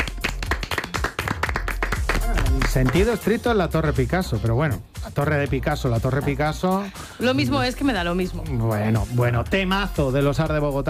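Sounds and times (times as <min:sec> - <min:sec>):
hand clapping for a quiz winner: 0:00.0 - 0:03.4
speech: 0:02.6 - 0:10.8.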